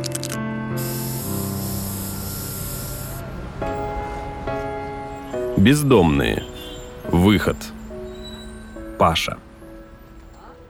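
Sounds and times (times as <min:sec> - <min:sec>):
music: 0:00.0 - 0:10.6
aerosol spray paint can spraying on wall: 0:00.8 - 0:03.1
speech: 0:05.6 - 0:06.5, 0:07.1 - 0:07.8, 0:09.0 - 0:09.5.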